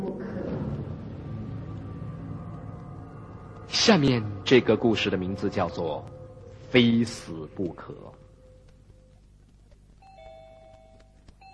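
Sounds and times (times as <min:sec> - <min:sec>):
faint low hum: 0:00.0 - 0:11.5
speech: 0:03.8 - 0:08.2
doorbell chiming: 0:10.0 - 0:11.5.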